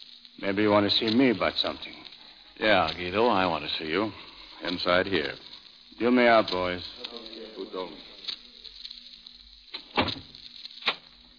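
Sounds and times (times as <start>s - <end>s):
faint steady hum: 0.0s - 11.3s
speech: 0.4s - 2.0s, 2.6s - 8.1s
door pushed shut: 9.9s - 10.3s.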